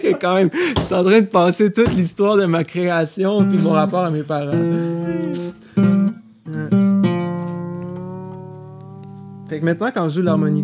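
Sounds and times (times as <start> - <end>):
speech: 0.0 - 5.6, 9.5 - 10.6
musical instrument being tuned with sustained bright notes: 3.4 - 9.6.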